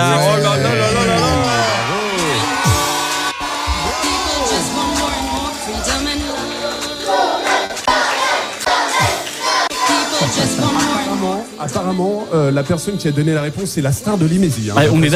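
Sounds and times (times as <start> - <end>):
crowd of children cheering and shouting: 0.4 - 11.4
people clapping: 1.4 - 11.2
speech: 11.7 - 15.1.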